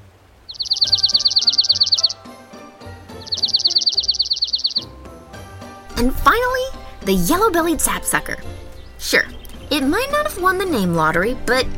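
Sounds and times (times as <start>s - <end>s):
dark-eyed junco trilling: 0.5s - 2.2s, 3.2s - 4.9s
speech: 6.0s - 6.5s, 7.1s - 11.7s.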